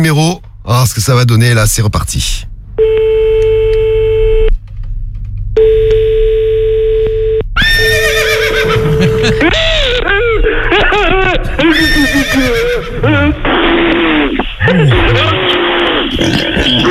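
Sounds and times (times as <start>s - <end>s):
speech: 0.0s - 3.1s
two steady electronic tones: 2.8s - 4.6s, 5.6s - 9.6s
horse whinnying: 7.6s - 9.5s, 11.6s - 13.3s
laughter: 8.5s - 16.8s.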